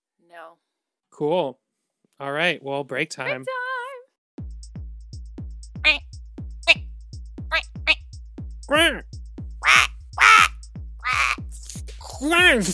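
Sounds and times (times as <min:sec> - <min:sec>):
speech: 0:00.3 - 0:01.6, 0:02.2 - 0:03.6, 0:12.5 - 0:12.7
steady thumping beat: 0:04.4 - 0:12.7
duck quacking: 0:07.5 - 0:08.0, 0:09.6 - 0:12.7.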